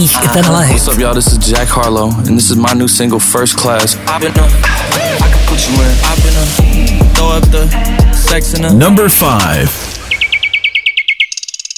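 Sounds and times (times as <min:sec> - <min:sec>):
speech: 0:00.0 - 0:09.9
nightingale singing: 0:09.8 - 0:11.7.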